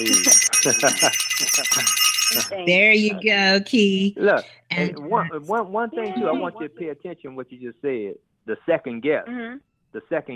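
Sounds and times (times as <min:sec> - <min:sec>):
laughter: 0:00.0 - 0:02.0, 0:02.8 - 0:03.4, 0:06.0 - 0:06.9
bright bell ringing: 0:00.0 - 0:03.4
speech: 0:00.0 - 0:10.3.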